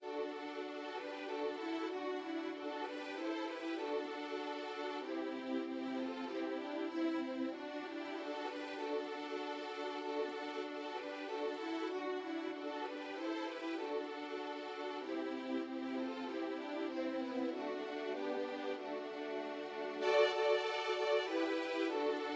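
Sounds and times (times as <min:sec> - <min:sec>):
violin trio: 0:00.0 - 0:22.3.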